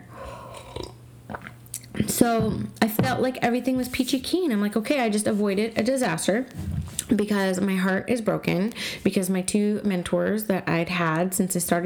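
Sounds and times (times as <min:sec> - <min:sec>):
person sipping coffee from a mug: 0:00.0 - 0:03.0
slurping and swallowing coffee: 0:00.0 - 0:03.2
speech: 0:02.2 - 0:11.8.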